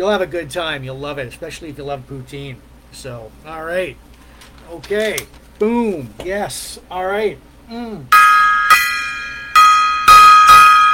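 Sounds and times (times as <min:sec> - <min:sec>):
speech: 0:00.0 - 0:04.1, 0:04.7 - 0:08.2
gong being struck: 0:08.1 - 0:10.9.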